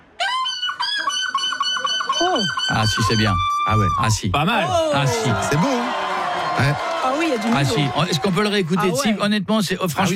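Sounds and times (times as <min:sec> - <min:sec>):
person imitating a seagull cry at a seagull-cry championship: 0:00.2 - 0:05.1
speech: 0:02.2 - 0:06.0, 0:06.6 - 0:10.1.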